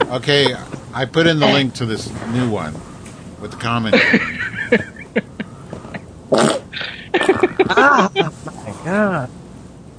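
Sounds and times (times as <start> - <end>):
laughter: 0.0 - 1.6, 3.8 - 6.1, 6.8 - 9.0
speech: 0.1 - 4.9, 7.9 - 9.4
farting: 6.3 - 6.7.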